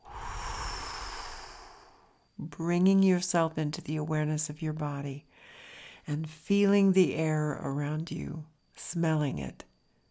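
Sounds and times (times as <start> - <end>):
long breath blown out through the mouth during a breathing exercise: 0.0 - 2.1
speech: 2.4 - 9.7.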